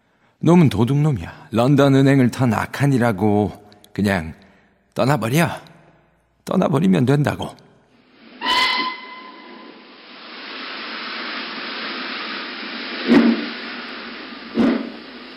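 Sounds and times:
speech: 0.4s - 4.4s, 5.0s - 5.7s, 6.4s - 7.6s
hiss of escaping steam: 8.1s - 15.3s
steam train whistle blowing: 8.4s - 9.9s.

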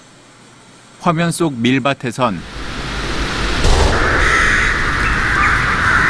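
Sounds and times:
speech: 1.0s - 2.6s
single sharp gunshot: 3.6s - 5.9s.

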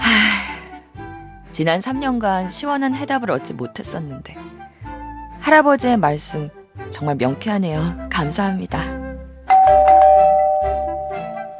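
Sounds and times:
speech: 1.5s - 4.6s, 5.4s - 9.0s
doorbell ringing with a bright chime: 9.5s - 11.5s.

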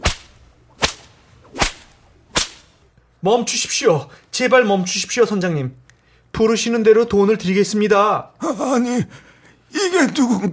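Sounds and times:
sharp whip cracks: 0.0s - 2.9s
speech: 3.2s - 10.5s.

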